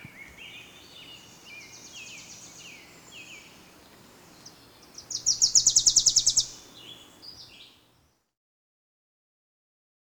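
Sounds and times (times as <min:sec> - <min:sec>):
Wilson's warbler song of staccato chips and twittering notes: 0:00.0 - 0:07.9.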